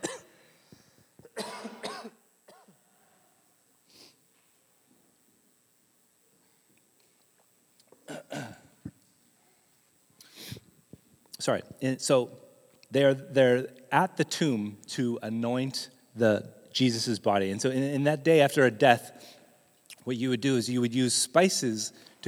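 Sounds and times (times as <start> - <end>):
speaker coughing: 0.0 - 0.4, 1.2 - 2.7, 8.1 - 8.7
faint noise: 0.0 - 22.2
quiet breathing: 0.2 - 1.3, 2.8 - 4.6, 8.8 - 11.0, 19.1 - 19.8, 21.9 - 22.2
speech: 11.4 - 19.4, 20.0 - 22.2.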